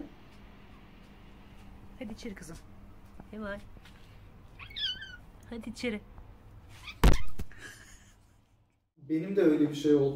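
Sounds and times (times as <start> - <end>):
speech: 2.0 - 4.0, 5.5 - 6.2, 9.1 - 10.1
cat meowing at home: 4.5 - 5.3.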